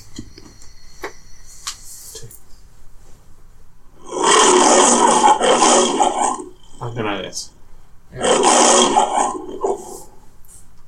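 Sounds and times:
lion roar with rough raspy growl in film studio logo intro: 4.0s - 7.4s, 8.1s - 10.2s.

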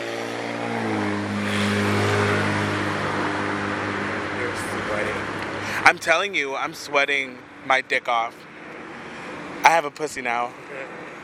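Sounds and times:
car engine droning as it passes outside: 0.0s - 5.9s
speech: 5.9s - 8.5s, 9.7s - 11.0s.

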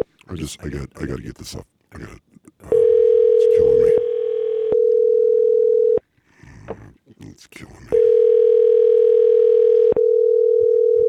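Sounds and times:
speech: 0.3s - 2.2s
phone ringing tone with double ring: 2.7s - 6.0s, 8.0s - 11.0s.

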